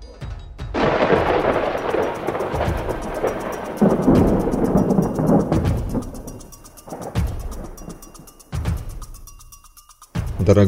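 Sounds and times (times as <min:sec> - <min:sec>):
loud thunder crack with rumbling roar: 0:00.8 - 0:08.0
speech: 0:10.5 - 0:10.6.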